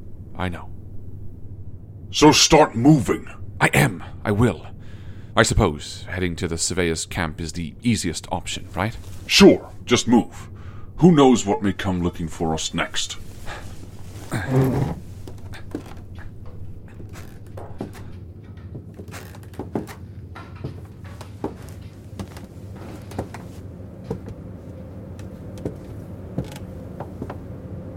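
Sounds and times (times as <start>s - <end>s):
low steady hum: 0.0s - 27.9s
speech: 0.4s - 0.8s, 2.1s - 4.7s, 5.4s - 13.3s, 14.3s - 15.0s
door creaking shut: 12.8s - 23.4s.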